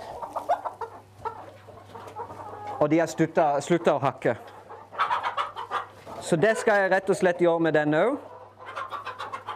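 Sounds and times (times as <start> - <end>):
hens clucking: 0.0 - 9.5
speech: 2.8 - 4.5, 6.3 - 8.3.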